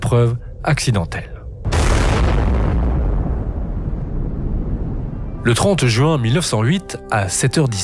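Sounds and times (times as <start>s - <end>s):
speech: 0.1s - 1.3s, 5.4s - 7.8s
massive explosion boom with deep rumbling low end: 1.6s - 5.4s.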